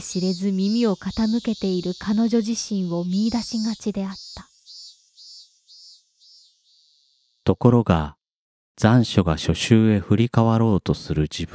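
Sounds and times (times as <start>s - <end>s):
speech: 0.0s - 4.5s, 7.4s - 8.2s, 8.8s - 11.5s
cicadas buzzing in a pine grove: 0.0s - 7.4s.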